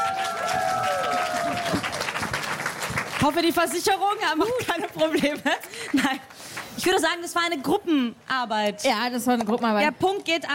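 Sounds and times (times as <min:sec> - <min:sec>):
small crowd clapping: 0:00.0 - 0:07.0
speech: 0:03.2 - 0:10.5.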